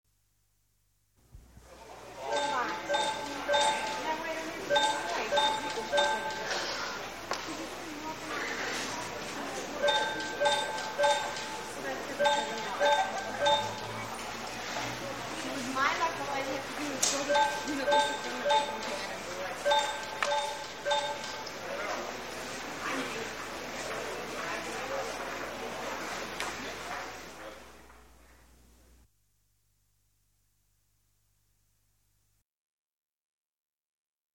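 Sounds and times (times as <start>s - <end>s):
crowd in the metro: 1.6s - 27.8s.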